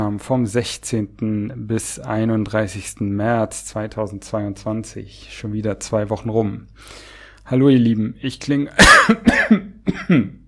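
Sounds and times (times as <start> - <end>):
speech: 0.1 - 10.4
person recovering from a Covid infection coughing: 8.8 - 10.4.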